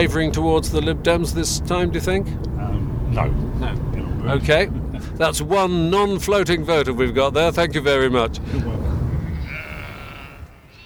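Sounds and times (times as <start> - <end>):
speech: 0.0 - 8.8
low outdoor rumble of wind: 0.0 - 10.8
sheep bleating: 9.0 - 10.8.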